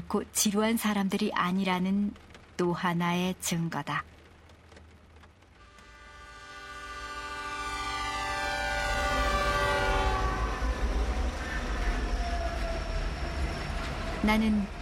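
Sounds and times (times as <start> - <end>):
train rumbling along the tracks: 0.0 - 14.7
speech: 0.1 - 4.2, 14.2 - 14.7
train horn blaring: 5.6 - 14.4.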